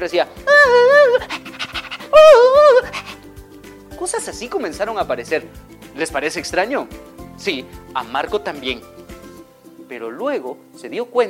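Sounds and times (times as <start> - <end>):
speech: 0.0 - 1.4, 4.2 - 8.9, 9.9 - 11.2
voice imitating a wavering siren wail: 0.5 - 1.5
quick breathy dog-like panting bursts: 1.1 - 3.3.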